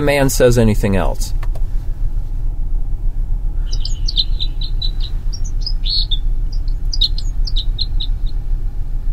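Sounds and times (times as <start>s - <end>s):
speech: 0.0s - 1.4s
steady low rumble: 0.0s - 9.1s
red crossbill calls: 3.6s - 8.4s.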